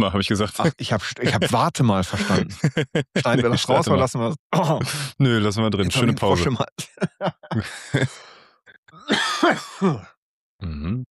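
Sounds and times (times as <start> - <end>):
speech: 0.0 - 8.3, 9.0 - 11.0
laughter: 0.5 - 8.3, 9.1 - 10.0
person coughing with hacking coughs: 2.2 - 4.0, 5.9 - 8.2, 9.1 - 10.1.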